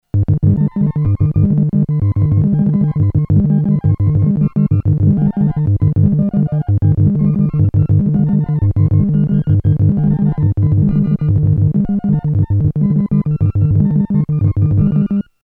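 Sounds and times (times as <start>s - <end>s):
hypnotic analog polysynth: 0.2s - 15.3s.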